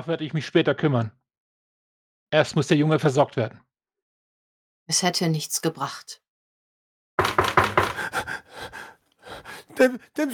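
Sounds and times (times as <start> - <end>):
speech: 0.0 - 1.2, 2.3 - 3.7, 4.9 - 6.2, 9.7 - 10.3
firm knocking: 7.2 - 8.2.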